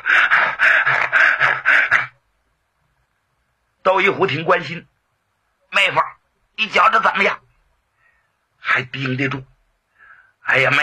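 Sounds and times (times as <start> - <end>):
person panting heavily in imitation of being out of breath: 0.0 - 2.2
speech: 4.0 - 4.9, 5.8 - 7.4, 8.6 - 9.5, 10.5 - 10.8.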